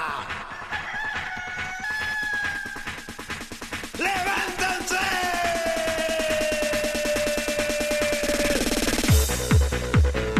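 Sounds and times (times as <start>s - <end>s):
loud dense busy rhythmic sound: 0.0s - 10.3s
henhouse rooster crowing: 0.5s - 3.1s.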